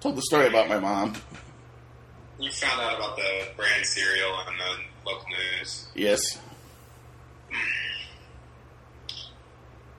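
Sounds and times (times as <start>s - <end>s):
speech: 0.0s - 1.4s, 2.4s - 6.5s, 7.5s - 7.8s
low steady hum: 0.0s - 9.9s
parrots squawking in backyard: 7.5s - 8.3s.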